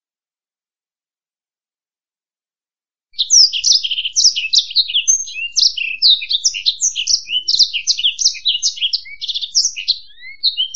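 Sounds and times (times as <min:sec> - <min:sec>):
Black-throated canary singing slurred whistles and buzzy trills: 0:03.2 - 0:10.7.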